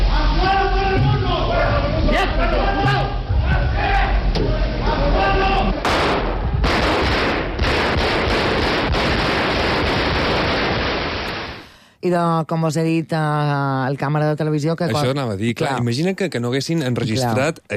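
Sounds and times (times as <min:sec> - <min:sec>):
sustained roar of crowd commotion and yelling: 0:00.0 - 0:06.7
raised voices shouting over a tense crowd: 0:00.1 - 0:05.8
sharp gunshots fired indoors into the ceiling: 0:05.8 - 0:11.6
speech: 0:12.0 - 0:17.7.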